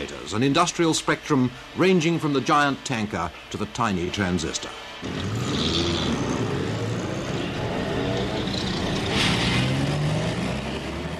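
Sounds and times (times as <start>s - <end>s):
speech: 0.0s - 6.1s
dense city road traffic rumble: 4.8s - 11.1s
vehicles passing: 4.8s - 11.1s.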